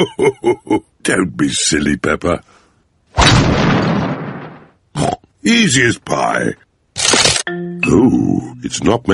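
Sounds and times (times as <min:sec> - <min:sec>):
speech: 0:00.0 - 0:02.6, 0:05.0 - 0:09.1
hammer knocking a nail into a wall, cracking it: 0:03.2 - 0:04.8.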